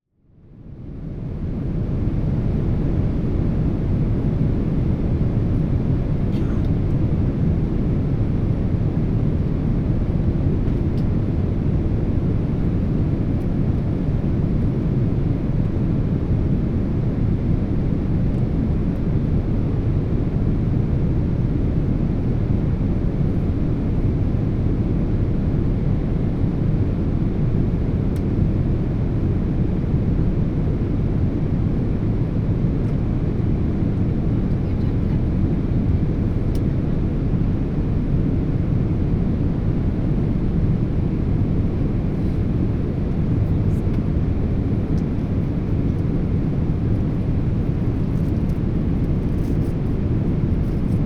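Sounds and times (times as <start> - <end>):
Boeing 777 inflight cabin ambience: 0.3 - 51.0.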